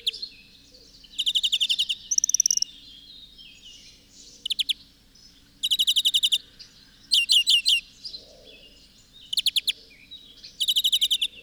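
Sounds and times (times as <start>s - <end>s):
European greenfinch rapid chattering notes: 1.1s - 2.7s, 4.3s - 4.8s, 5.6s - 6.4s, 7.1s - 7.8s, 9.2s - 9.8s, 10.5s - 11.4s.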